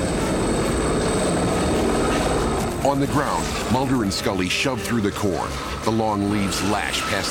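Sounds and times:
helicopters flying low over a cornfield: 0.0 - 7.2
speech: 2.9 - 7.2.

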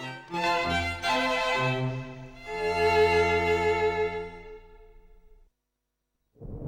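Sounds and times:
orchestral music: 0.0 - 5.1.

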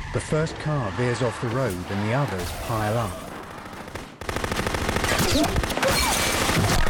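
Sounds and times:
speech: 0.2 - 3.2, 5.4 - 5.6
rapid gunfire in an ambush on a country road aimed at a car's driver: 3.2 - 6.8.

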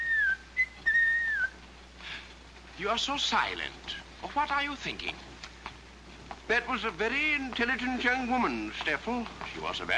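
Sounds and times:
man whistling a melody while hiking along a path through a valley: 0.0 - 1.6
speech: 2.8 - 5.3, 6.5 - 9.9.

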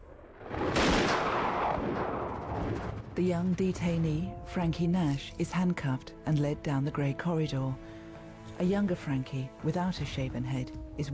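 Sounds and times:
low rumble: 0.0 - 5.1
gunshot: 0.5 - 3.0
speech: 3.2 - 7.9, 8.6 - 11.1.

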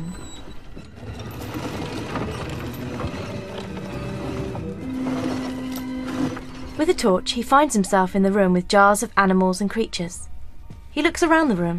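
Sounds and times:
low hum: 0.0 - 11.4
dumbwaiter being hauled up its shaft by hand: 0.5 - 6.9
speech: 6.8 - 10.3, 11.0 - 11.7.

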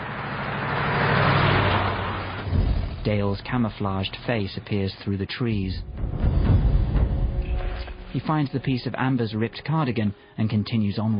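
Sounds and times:
pickup truck driving down a road: 0.0 - 8.9
speech: 3.0 - 6.0, 8.1 - 11.1.

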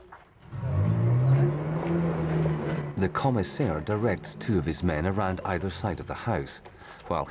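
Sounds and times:
car engine starting as the car reverses out of a driveway: 0.4 - 6.8
speech: 3.0 - 7.2.

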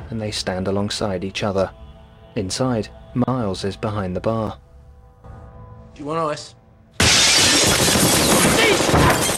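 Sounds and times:
speech: 0.1 - 1.8, 2.4 - 4.6, 6.0 - 6.6
gunfire from two men on a pub: 7.0 - 9.3
pub windows shattering with tinkling glass shards: 7.0 - 9.3.

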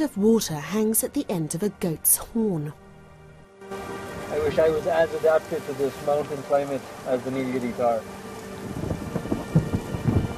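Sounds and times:
speech: 0.0 - 2.8, 4.5 - 8.8
heavy rain in the misty Western Ghats mountains: 3.6 - 10.3
low rumbling thunder: 8.6 - 10.3.

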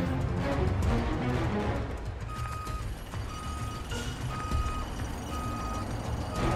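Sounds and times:
low car engine rumble: 0.0 - 6.5
Lexus reversing alarm beeping in a car park: 2.3 - 6.5.

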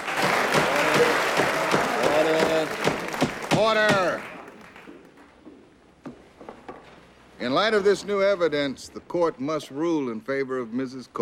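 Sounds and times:
murmuring voices: 0.0 - 2.8
crowd applauding in a courtroom: 0.0 - 5.4
speech: 3.7 - 4.3, 7.4 - 11.1.

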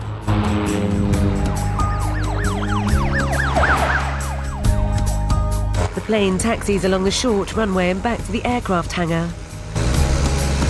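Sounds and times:
police car engine drone: 0.0 - 10.6
police car siren wailing: 1.0 - 6.0
speech: 6.1 - 9.4.

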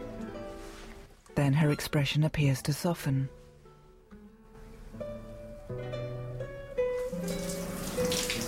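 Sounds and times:
speech: 1.4 - 3.4
shower water running: 7.0 - 8.4.

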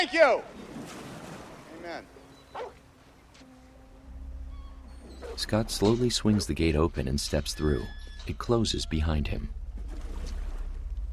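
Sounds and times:
speech: 0.0 - 0.9, 1.8 - 2.8, 5.3 - 9.6
dog barking at a gate: 2.5 - 2.8
low rumbling background: 3.2 - 11.1.

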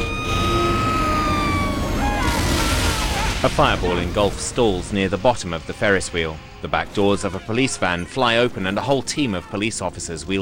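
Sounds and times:
fire engine siren wailing: 0.0 - 4.2
dense rumbling noisy background: 0.0 - 10.4
speech: 3.4 - 10.4.

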